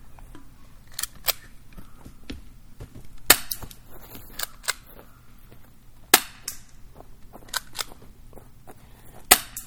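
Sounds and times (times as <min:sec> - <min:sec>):
low steady hum: 0:00.0 - 0:09.6
airsoft gun shots: 0:03.3 - 0:03.8, 0:06.1 - 0:06.6, 0:09.3 - 0:09.6.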